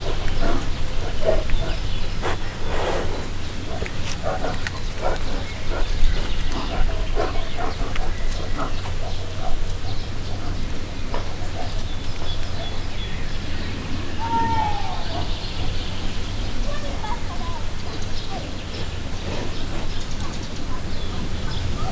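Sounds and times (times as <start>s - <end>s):
two brown bears moving about in a zoo: 0.0s - 21.8s.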